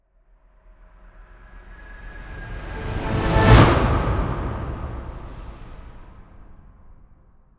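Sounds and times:
orchestral swell to impact: 1.5 - 7.0.

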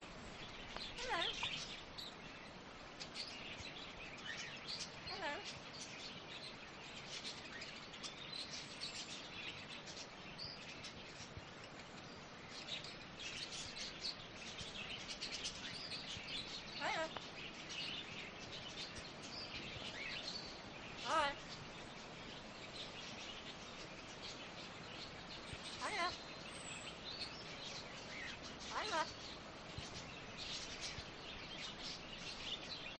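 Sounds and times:
background birds: 0.0 - 32.9
parrot chatter on an urban farm: 0.9 - 1.7, 5.0 - 5.6, 16.8 - 17.2, 21.0 - 21.6, 25.6 - 26.3, 28.2 - 31.0.

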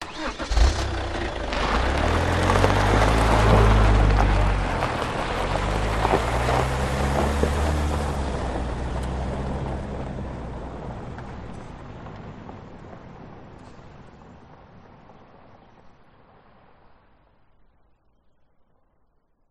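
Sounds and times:
Holden Captiva SUV engine starting: 0.0 - 12.5.

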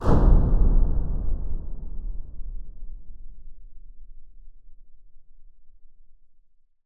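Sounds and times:
impact boom: 0.0 - 4.0.

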